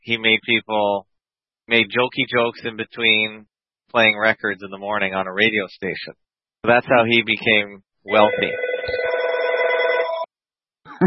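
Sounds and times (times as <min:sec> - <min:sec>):
speech: 0:00.0 - 0:01.1, 0:01.7 - 0:09.0
telephone bell ringing with a rapid metallic trill: 0:08.1 - 0:10.3.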